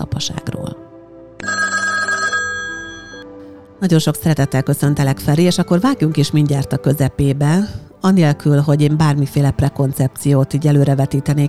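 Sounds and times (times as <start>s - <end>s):
speech: 0.0s - 0.5s, 3.8s - 11.4s
telephone ringing after dialing a call: 1.4s - 3.4s.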